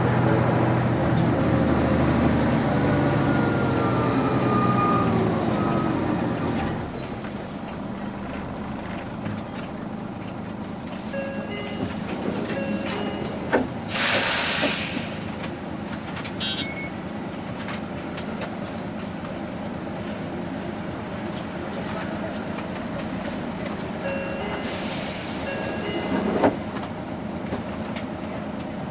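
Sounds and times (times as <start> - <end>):
city bus engine rumbling: 0.0 - 28.8
sharp hissing bursts of air: 13.9 - 15.3, 24.6 - 25.8.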